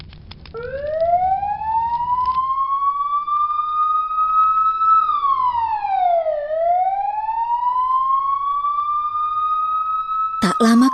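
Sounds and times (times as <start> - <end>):
fire engine siren as the truck arrives at a house fire: 0.6 - 10.9.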